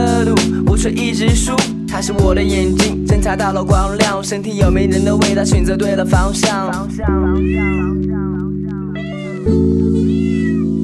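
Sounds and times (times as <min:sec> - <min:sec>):
speech: 0:00.2 - 0:08.2, 0:09.5 - 0:10.0
cat meowing: 0:07.1 - 0:10.8.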